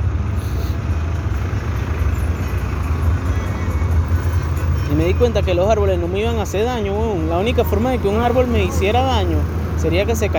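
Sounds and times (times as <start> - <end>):
road traffic rumbling with cars passing: 0.0 - 10.3
speech: 5.0 - 10.3.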